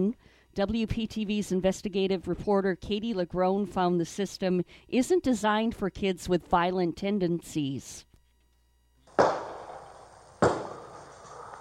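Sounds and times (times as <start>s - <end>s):
speech: 0.0s - 8.1s
gunshots fired from a car at sheriff's deputies in Florida: 9.1s - 11.5s.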